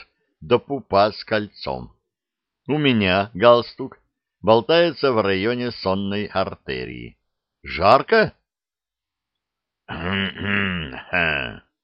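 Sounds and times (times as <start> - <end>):
speech: 0.4 - 2.0, 2.7 - 8.4, 9.9 - 11.6
military marshal coughing: 9.9 - 11.7.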